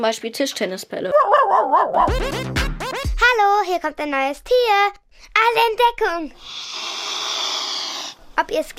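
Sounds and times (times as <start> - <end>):
speech: 0.0 - 7.4, 8.4 - 8.7
angry female swan hissing near its nest as a boat comes close: 6.4 - 8.3.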